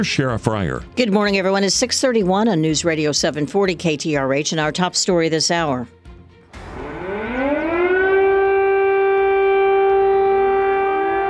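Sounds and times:
speech: 0.0s - 6.0s
air raid siren wailing in Kyiv Ukraine: 6.5s - 11.2s.

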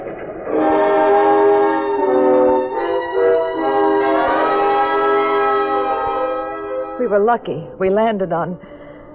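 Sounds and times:
moving train rumbling on rails: 0.0s - 8.1s
train horn blaring: 0.5s - 7.3s
speech: 7.1s - 8.7s.

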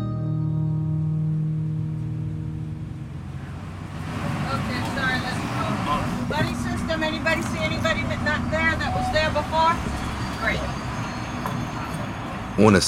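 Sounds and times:
large passenger bus engine rumble in Central Florida: 0.0s - 12.8s
many middle and high school students chattering on a bus: 4.4s - 12.8s
speech: 12.6s - 12.8s.

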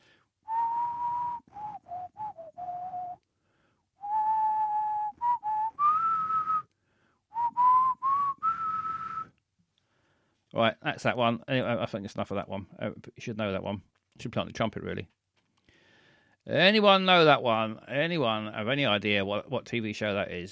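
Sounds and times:
person whistling a tune: 0.5s - 3.3s, 4.0s - 6.7s, 7.3s - 9.4s
speech: 10.6s - 15.2s, 16.5s - 20.4s.

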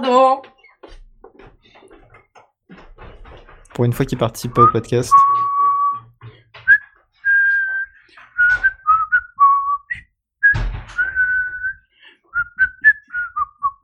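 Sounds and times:
speech: 0.0s - 0.5s, 3.8s - 5.4s
person whistling a cheerful hold-music style tune: 4.5s - 6.1s, 6.7s - 13.8s
soft thump: 10.4s - 11.8s.

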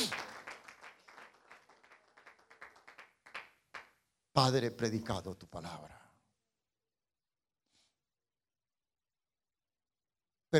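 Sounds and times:
congregation applauding standing during a church service: 0.0s - 4.0s
speech: 4.4s - 6.0s.

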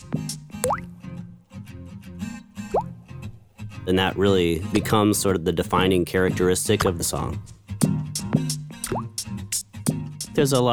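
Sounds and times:
busy musical backing with low tones and rhythmic percussion: 0.0s - 0.8s, 7.4s - 10.4s
bright water-drop plops with upward-bending pitch: 0.6s - 0.9s, 2.7s - 2.9s, 8.9s - 9.1s
speech: 0.6s - 1.0s, 3.9s - 7.6s, 10.4s - 10.7s.

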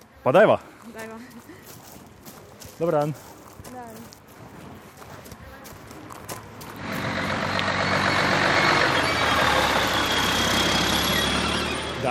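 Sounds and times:
speech: 0.2s - 1.8s, 2.8s - 4.1s
truck engine droning: 6.2s - 12.1s
heavy machinery rumbling at a busy construction site: 6.4s - 12.1s.

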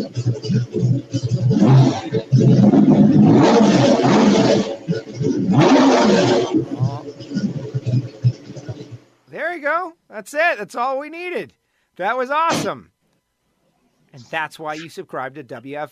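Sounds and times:
speech: 0.0s - 1.2s, 10.2s - 12.9s, 14.1s - 15.8s
loud race car engine revving: 1.4s - 7.5s.

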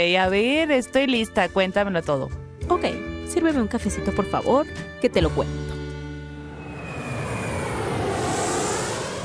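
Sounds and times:
speech: 0.0s - 5.7s
airplane engine roaring in to land: 5.5s - 9.2s
descending tonal whistle: 6.4s - 9.2s.

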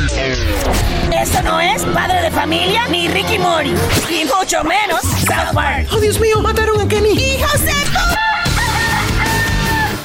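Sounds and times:
speech: 0.7s - 8.4s
rooster crowing: 8.2s - 10.0s.

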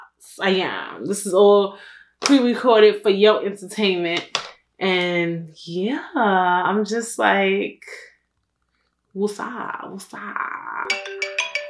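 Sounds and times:
speech: 0.2s - 8.1s, 9.2s - 11.2s
electronic mobile phone ringtone melody: 10.8s - 11.6s.

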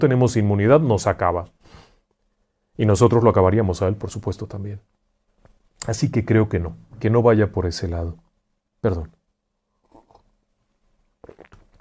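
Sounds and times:
speech: 0.0s - 1.8s, 2.8s - 5.0s, 5.8s - 8.2s, 8.8s - 9.2s
breaths: 1.6s - 2.8s
short slurps: 9.8s - 10.3s, 11.2s - 11.7s
small mouth clicks: 9.8s - 10.3s, 11.2s - 11.7s
person sipping coffee: 9.8s - 10.4s, 11.2s - 11.7s
wet swallowing noises: 9.8s - 10.4s, 11.2s - 11.7s.

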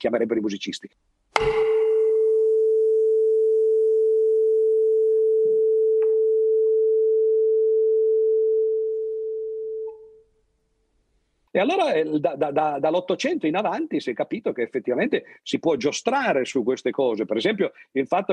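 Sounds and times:
speech: 0.0s - 1.5s, 11.6s - 18.3s
tuning fork struck and ringing a pure tone: 1.4s - 10.2s.

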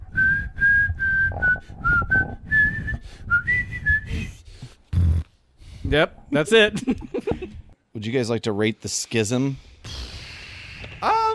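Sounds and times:
whistled jaunty theme song melody: 0.1s - 4.4s
speech: 5.9s - 7.2s, 8.0s - 10.0s
laughter: 6.4s - 7.8s.

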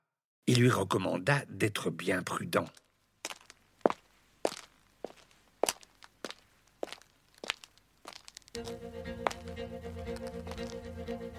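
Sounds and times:
speech: 0.5s - 2.8s
footsteps crunching on a path: 3.2s - 10.9s.

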